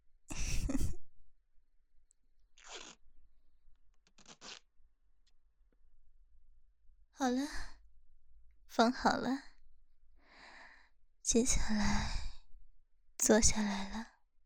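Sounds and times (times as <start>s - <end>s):
adhesive tape being pulled off a roll: 2.6s - 3.0s, 4.0s - 4.6s
speech: 7.2s - 7.7s, 8.8s - 9.5s, 11.3s - 12.2s, 13.3s - 14.1s.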